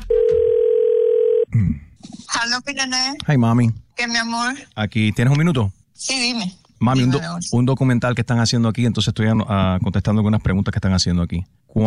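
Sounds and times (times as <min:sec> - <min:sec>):
telephone ringing tone while placing a call: 0:00.0 - 0:01.5
speech: 0:02.4 - 0:11.8.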